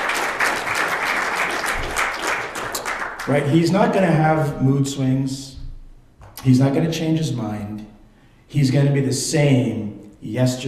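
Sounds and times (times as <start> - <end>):
church audience applause during a sermon: 0.0 - 3.5
speech: 3.2 - 5.6, 6.4 - 7.9, 8.5 - 10.6.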